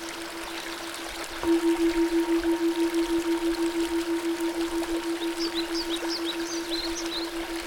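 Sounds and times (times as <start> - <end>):
small river gurgling and flowing: 0.0 - 7.6
sustained gently pulsing tone: 0.0 - 7.6
small birds chirping faintly: 3.5 - 7.6.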